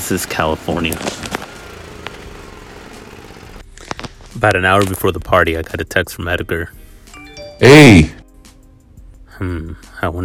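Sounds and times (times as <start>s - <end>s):
lawnmower engine droning: 0.0s - 3.6s
speech: 0.1s - 1.4s, 4.4s - 6.8s, 7.6s - 8.2s, 9.4s - 10.2s.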